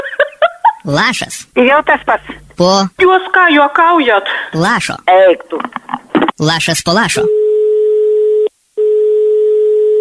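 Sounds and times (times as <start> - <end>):
speech: 0.8 - 5.8, 6.4 - 7.4
telephone tone as a neighbor calls: 7.3 - 9.9.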